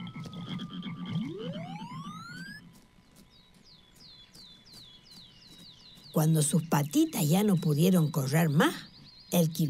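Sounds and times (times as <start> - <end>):
dense chorus of frogs croaking: 0.0 - 9.6
speech: 6.2 - 9.6.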